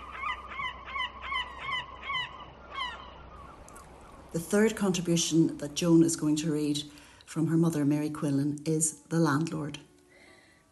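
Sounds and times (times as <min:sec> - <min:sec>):
seagulls calling: 0:00.0 - 0:04.3
faint hiss: 0:01.9 - 0:10.6
speech: 0:04.3 - 0:09.9.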